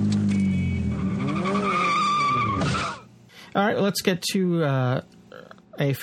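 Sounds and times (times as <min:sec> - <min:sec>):
getaway car engine revving and rising in pitch: 0:00.0 - 0:03.1
getaway car tires squealing: 0:00.0 - 0:03.1
speech: 0:03.6 - 0:05.2, 0:05.8 - 0:06.0.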